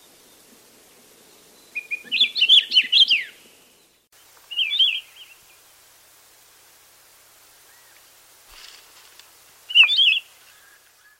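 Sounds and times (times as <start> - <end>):
Akiapolaau song in Hawaii: 0.0 - 5.7, 9.7 - 11.1.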